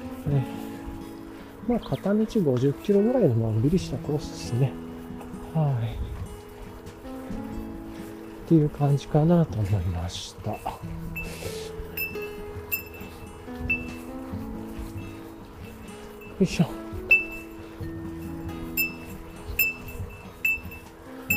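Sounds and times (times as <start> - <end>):
outdoor noise: 0.0 - 21.3
speech: 0.3 - 0.6, 1.6 - 4.9, 5.5 - 6.1, 8.5 - 11.6, 16.4 - 16.8
small bell jingling: 10.4 - 14.1, 15.8 - 21.3.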